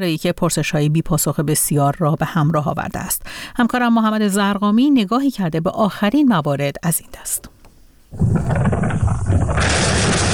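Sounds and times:
speech: 0.0s - 7.5s, 8.1s - 9.8s
loud deep explosion booming and rumbling: 8.2s - 10.3s.

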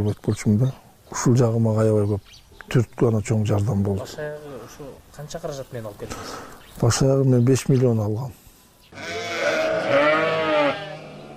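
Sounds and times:
speech: 0.0s - 9.2s
Edilbay sheep bleating in a farmyard: 8.9s - 11.3s.

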